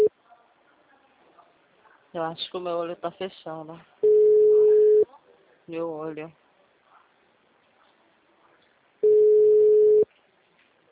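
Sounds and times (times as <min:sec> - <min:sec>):
speech: 0:02.1 - 0:04.1, 0:05.7 - 0:06.4
telephone ringback tone beep while placing a call: 0:04.0 - 0:05.0, 0:09.0 - 0:10.0.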